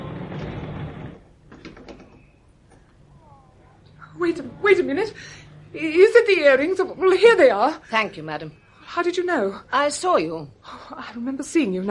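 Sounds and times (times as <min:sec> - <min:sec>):
store sliding door opening with a mechanical swoosh: 0:00.0 - 0:01.2
store sliding door rattles and clicks as it moves: 0:00.1 - 0:02.3
speech: 0:04.2 - 0:11.9.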